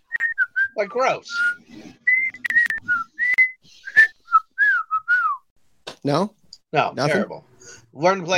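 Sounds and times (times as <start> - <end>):
person whistling a short wandering tune: 0.1 - 5.4
speech: 0.8 - 2.0, 6.0 - 8.3.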